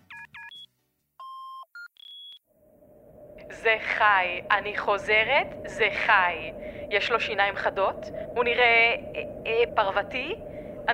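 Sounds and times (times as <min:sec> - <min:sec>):
electronic voicemail-style beeps: 0:00.1 - 0:02.4
noisy hiss: 0:02.6 - 0:10.9
speech: 0:03.6 - 0:10.9.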